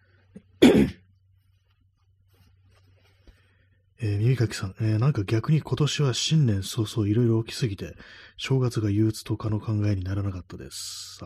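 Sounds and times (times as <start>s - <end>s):
gruff throat clearing: 0.6s - 1.1s
speech: 4.0s - 11.2s.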